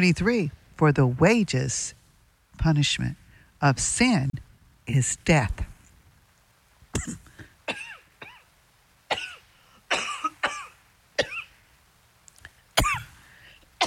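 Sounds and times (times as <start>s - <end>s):
speech: 0.0s - 2.0s, 2.6s - 5.7s, 7.0s - 7.8s
person coughing with something caught in the throat: 6.9s - 8.4s, 9.1s - 11.6s, 12.8s - 13.1s.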